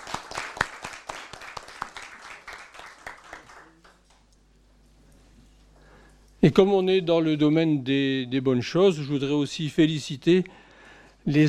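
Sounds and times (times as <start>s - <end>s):
room full of people applauding: 0.0s - 4.0s
speech: 6.4s - 10.6s, 11.2s - 11.4s.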